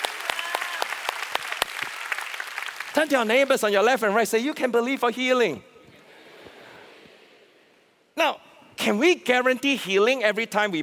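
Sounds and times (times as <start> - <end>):
church congregation clapping: 0.0 - 4.1
speech: 3.0 - 5.7, 8.2 - 10.8.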